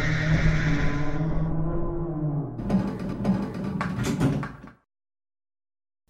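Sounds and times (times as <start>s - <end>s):
elevator doors closing in video game: 0.1s - 4.7s.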